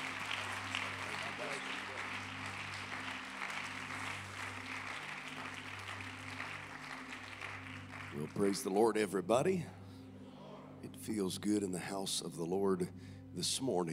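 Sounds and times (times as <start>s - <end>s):
audience applauding: 0.0s - 8.8s
speech: 8.2s - 9.8s, 11.1s - 13.9s.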